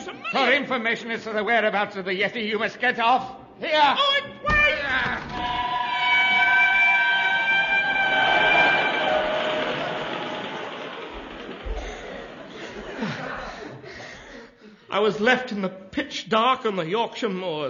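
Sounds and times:
laughter: 0.0 - 0.8, 7.4 - 14.9
speech: 0.3 - 5.6, 14.9 - 17.6
high sustained metallic squeal of a train: 5.3 - 9.9
train pulling away on the Yorkshire moors in the dark: 7.4 - 12.9.

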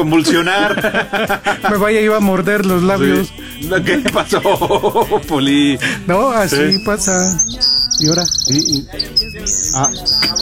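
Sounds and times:
laughter: 0.0 - 6.9
speech: 0.0 - 10.4
bird whistle held in a man's mouth chirping: 6.5 - 10.4.

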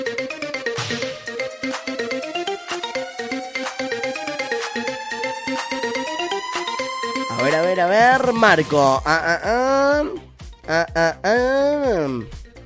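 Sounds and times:
bright melodic cellphone ringback tune with a steady repeating beat: 0.4 - 8.6
speech: 7.4 - 12.4.

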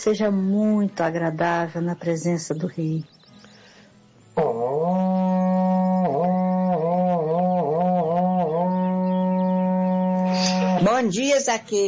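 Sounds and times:
speech: 0.0 - 3.2, 11.1 - 11.8
berrante cattle-herding horn blowing a long brassy note: 4.4 - 10.8.

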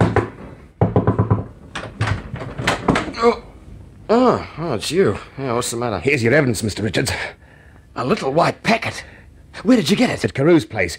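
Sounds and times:
rapid heavy hammering on a front door: 0.0 - 3.1
speech: 3.2 - 3.5, 4.1 - 7.4, 8.0 - 10.9.

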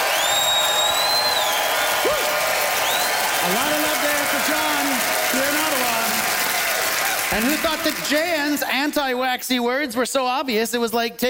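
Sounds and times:
piercing whistles: 0.0 - 2.0, 2.8 - 3.3
people whooping and cheering: 0.0 - 8.3
live audience applauding: 0.0 - 9.0
speech: 7.3 - 11.2.

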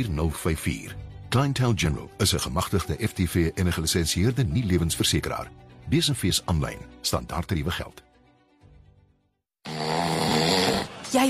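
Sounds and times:
speech: 0.0 - 8.1
man snoring heavily: 9.6 - 11.0.

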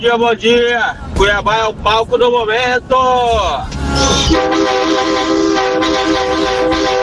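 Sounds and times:
speech: 0.0 - 7.0
horn honked by a radio listener in Cuiabá: 3.6 - 7.0.

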